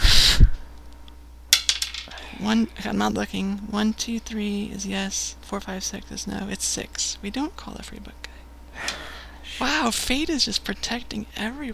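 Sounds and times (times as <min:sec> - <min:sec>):
die rolled on a table: 0:01.5 - 0:02.3
speech: 0:02.4 - 0:08.3, 0:09.6 - 0:11.7.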